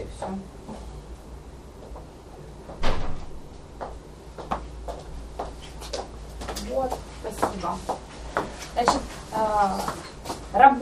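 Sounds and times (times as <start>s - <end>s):
quiet room hum: 0.0s - 10.8s
door shutting with a firm thud: 2.8s - 3.4s
speech: 8.8s - 10.0s.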